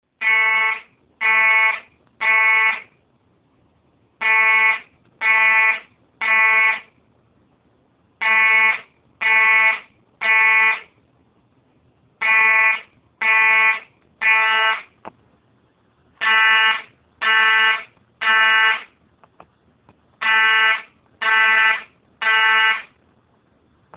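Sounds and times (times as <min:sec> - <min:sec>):
school fire alarm ringing: 0:00.2 - 0:02.9, 0:04.2 - 0:06.9, 0:08.2 - 0:10.9, 0:12.2 - 0:14.9, 0:16.2 - 0:18.9, 0:20.2 - 0:22.9.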